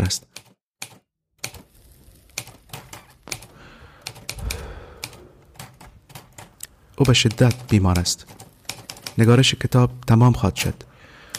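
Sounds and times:
speech: 0.0 - 0.3, 7.0 - 8.4, 9.2 - 10.9
typewriter keys clacking: 2.4 - 9.4.

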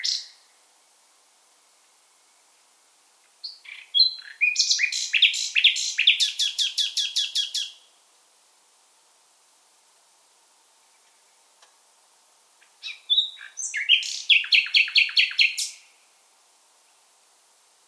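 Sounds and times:
Common nightingale singing in full voice: 0.0 - 0.9, 1.6 - 8.1, 10.6 - 17.8.

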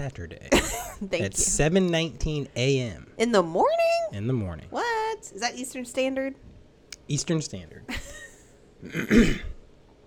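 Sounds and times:
speech: 0.0 - 6.5, 7.1 - 8.1, 8.8 - 9.5
throat clearing: 8.8 - 9.6.

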